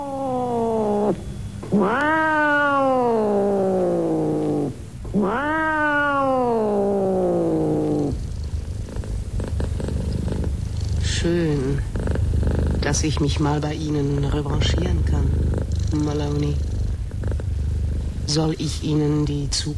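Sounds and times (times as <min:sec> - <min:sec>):
black cat meowing in greeting: 0:00.0 - 0:08.3
black cat purring: 0:00.0 - 0:19.7
speech: 0:01.1 - 0:02.3, 0:12.9 - 0:16.7, 0:18.3 - 0:19.7.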